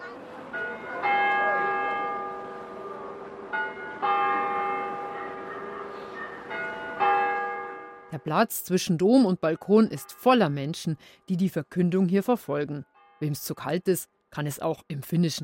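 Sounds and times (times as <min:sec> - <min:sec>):
large cathedral bells ringing at noon in Turku Finland on Christmas Eve: 0:00.4 - 0:10.7
speech: 0:08.2 - 0:15.4.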